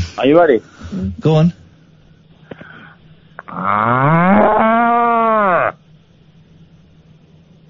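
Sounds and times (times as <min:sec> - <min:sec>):
speech: 0:00.2 - 0:01.6, 0:03.5 - 0:04.8
person imitating a rampant cow mooing: 0:03.4 - 0:05.8.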